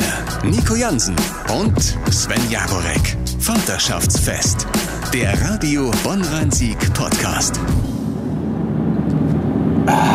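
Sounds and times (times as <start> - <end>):
speech: 0.4 - 7.9
engine and tire drone inside a moving car: 7.8 - 10.1
bright hissy swell: 9.8 - 10.1.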